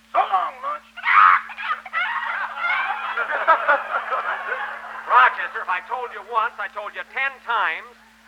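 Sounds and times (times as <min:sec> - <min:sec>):
chicken squawking and cackling as it is thrown over a fence: 0:00.9 - 0:05.1
laughter: 0:01.0 - 0:06.6
speech: 0:05.6 - 0:08.0.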